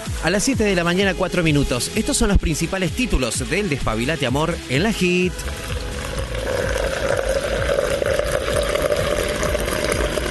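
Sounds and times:
speech: 0.2 - 5.8
water poured into a mate gourd: 5.3 - 10.2.

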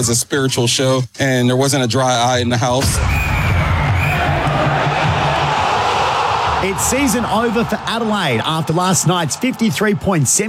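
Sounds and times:
speech: 0.0 - 3.4, 6.6 - 10.4
large sold-out concert crowd in Paris cheering: 2.8 - 10.4.

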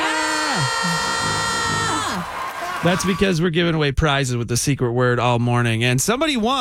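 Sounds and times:
several voices screaming together: 0.0 - 3.2
speech: 0.6 - 1.5, 2.8 - 6.5.

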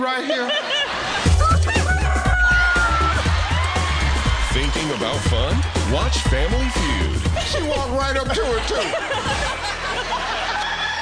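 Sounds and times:
speech: 0.0 - 0.7, 4.6 - 9.7
laughter: 0.0 - 5.6, 6.4 - 11.0
person imitating a rooster crowing: 1.4 - 3.2.

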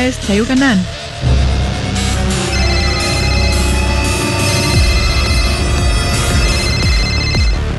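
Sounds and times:
speech: 0.0 - 1.4
telephone ringing with bright electronic tone: 2.3 - 7.7.

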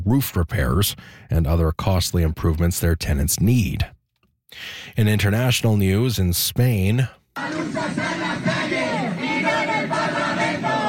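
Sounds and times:
speech: 0.1 - 8.0
thousands of protesters shouting and chanting marching through Madrid streets: 7.4 - 10.8.

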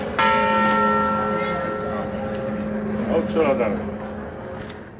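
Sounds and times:
deep church bell strike of the Torre del Orejón at Santa María church: 0.1 - 4.0
speech: 3.2 - 4.1.

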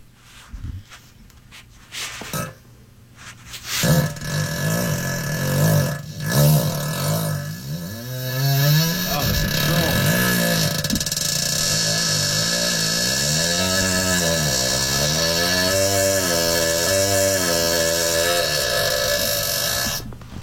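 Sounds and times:
long raspy fart sound from a song track: 2.2 - 2.6, 3.7 - 20.4.

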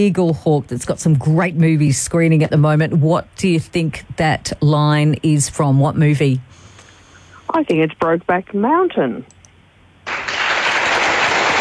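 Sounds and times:
speech: 0.0 - 6.6, 7.5 - 9.4
studio applause sound effect of crowd clapping: 10.1 - 11.5.

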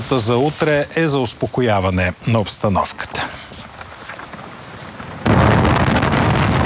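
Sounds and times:
speech: 0.0 - 3.4
strong wind on a road buffeting the microphone: 3.6 - 6.6.

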